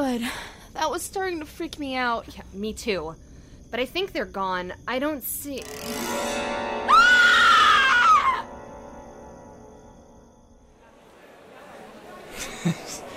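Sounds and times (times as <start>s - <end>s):
speech: 0.1s - 6.3s
person in a dorm screaming in fright: 6.9s - 8.5s
laughter: 11.2s - 13.1s.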